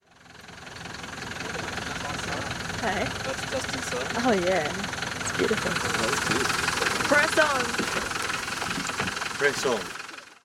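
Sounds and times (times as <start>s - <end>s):
bus engine: 0.0s - 10.4s.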